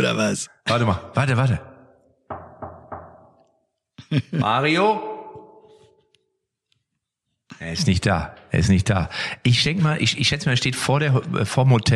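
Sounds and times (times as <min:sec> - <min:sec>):
speech: 0:00.0 - 0:01.7, 0:04.1 - 0:05.1, 0:07.5 - 0:11.9
knocking on a hotel room door: 0:02.3 - 0:03.5.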